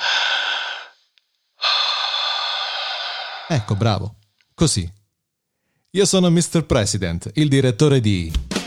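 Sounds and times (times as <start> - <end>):
loud deep breath: 0.0 - 4.1, 5.5 - 5.9
speech: 3.5 - 5.0, 6.0 - 8.5.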